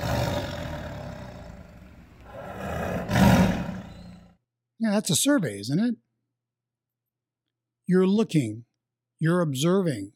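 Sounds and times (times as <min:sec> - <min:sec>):
Bengal tiger roaring: 0:00.0 - 0:04.4
speech: 0:04.9 - 0:06.0, 0:07.9 - 0:10.1.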